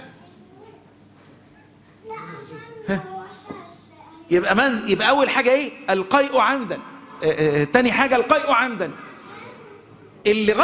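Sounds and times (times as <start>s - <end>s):
child's raised voice: 0.1s - 0.9s, 2.0s - 4.3s, 9.0s - 10.1s
children talking and complaining: 0.1s - 1.1s, 2.0s - 4.4s, 8.8s - 10.2s
speech: 4.3s - 9.0s, 10.2s - 10.6s.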